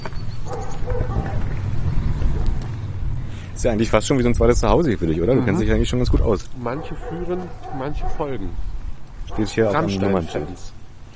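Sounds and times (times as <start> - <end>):
rumbling noise: 0.0 - 11.1
dog from a local electronics shop barking: 0.4 - 1.5, 6.7 - 8.4, 9.3 - 10.7
speech: 3.6 - 8.7, 9.3 - 10.8.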